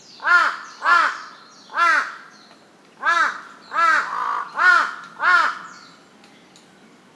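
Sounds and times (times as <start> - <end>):
large-billed crow calling with hoarse caws: 0.2 - 2.3, 3.0 - 5.7.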